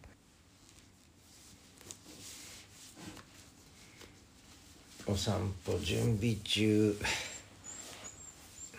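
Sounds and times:
speech: 5.1s - 7.3s
dog whining to be taken for a walk: 7.2s - 8.7s.

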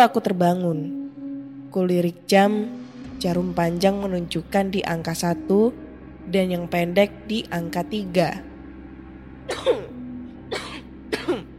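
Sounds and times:
speech: 0.0s - 1.0s, 1.7s - 8.5s, 9.5s - 9.9s
person coughing harshly: 9.5s - 11.5s.

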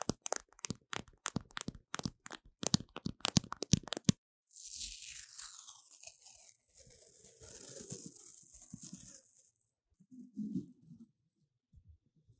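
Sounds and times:
paper tape handled close to a microphone: 0.0s - 9.8s.

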